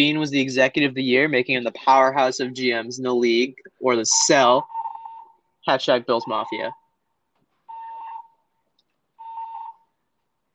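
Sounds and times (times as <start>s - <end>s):
speech: 0.0s - 4.7s, 5.6s - 6.8s
fire alarm beeping during a test run: 4.6s - 5.4s, 6.1s - 6.9s, 7.7s - 8.4s, 9.2s - 9.9s.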